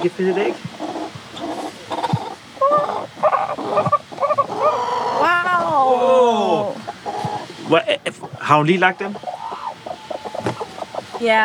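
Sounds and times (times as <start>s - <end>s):
speech: 0.0s - 0.6s, 7.7s - 9.3s, 11.2s - 11.4s
broody hens clucking in a henhouse: 0.0s - 11.4s.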